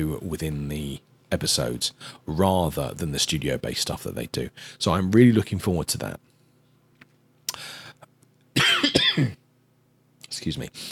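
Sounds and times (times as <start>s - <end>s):
speech: 0.0s - 6.3s, 9.2s - 9.4s, 10.4s - 10.8s
throaty rasping coughs: 8.6s - 9.4s.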